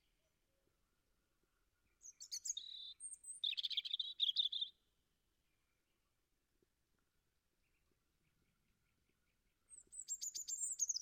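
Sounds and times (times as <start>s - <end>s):
European robin song with thin high notes and short trills: 1.9s - 4.8s, 7.6s - 11.0s.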